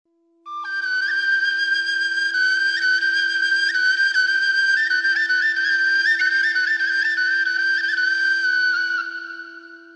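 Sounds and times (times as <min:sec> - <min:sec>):
Armenian shvi flute: 0:00.2 - 0:09.9.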